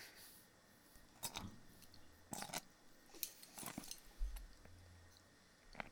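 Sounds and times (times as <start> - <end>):
chewing bamboo shoots: 1.1 - 5.9.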